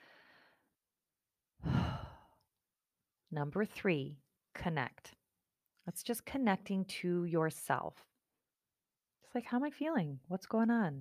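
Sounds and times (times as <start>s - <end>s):
slow deep breath in during a guided breathing exercise: 0.0s - 0.7s, 1.6s - 2.4s
speech: 3.3s - 5.2s, 5.8s - 8.1s, 9.2s - 10.9s.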